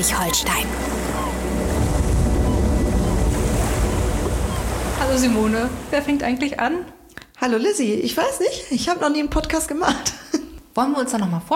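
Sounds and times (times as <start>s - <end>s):
speech: 0.0s - 1.1s, 5.0s - 10.2s, 10.8s - 11.5s
sea surf roaring on the coast: 0.0s - 6.6s
gusting wind buffeting the microphone: 1.0s - 6.5s.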